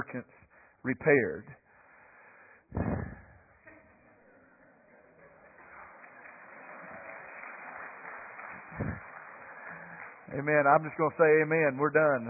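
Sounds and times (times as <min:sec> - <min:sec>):
speech: 0:00.0 - 0:01.6, 0:02.7 - 0:03.1, 0:10.3 - 0:12.2
audience clapping: 0:04.0 - 0:12.2.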